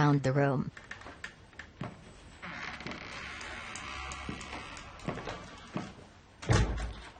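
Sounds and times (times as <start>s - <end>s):
speech: 0.0s - 1.0s
kitchen door creaking open: 0.7s - 7.1s
kitchen door thudding shut: 6.4s - 7.0s.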